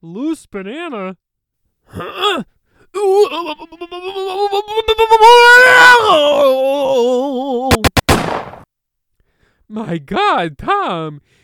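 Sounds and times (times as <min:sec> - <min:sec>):
speech: 0:00.0 - 0:01.2, 0:01.9 - 0:07.9, 0:09.7 - 0:11.4
gunshots in a comedy sketch: 0:07.8 - 0:08.7.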